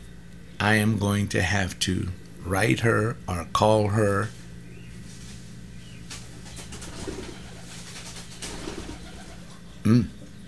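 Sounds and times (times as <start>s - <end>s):
steady hum: 0.0s - 10.4s
speech: 0.6s - 4.4s, 9.9s - 10.2s
pigeons cooing on a fence outside a study: 5.8s - 10.4s.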